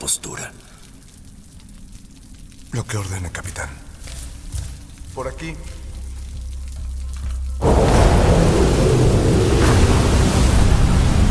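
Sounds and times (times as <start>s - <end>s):
driving rain in a storm: 0.0s - 11.2s
speech: 2.7s - 3.9s, 5.2s - 5.8s
low rumbling wind in a storm: 5.8s - 11.2s
crashing surf in a storm: 7.6s - 11.2s.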